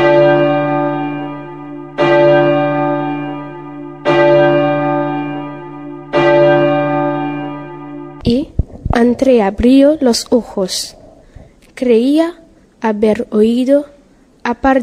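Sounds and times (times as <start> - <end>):
deep muffled clock bell striking midnight: 0.0 - 8.3
speech: 9.2 - 11.0, 11.8 - 14.8.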